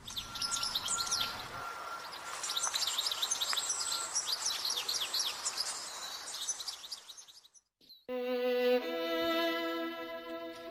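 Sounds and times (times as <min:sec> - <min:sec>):
European goldfinch singing: 0:00.0 - 0:08.1
sustained musical tone: 0:08.1 - 0:10.7.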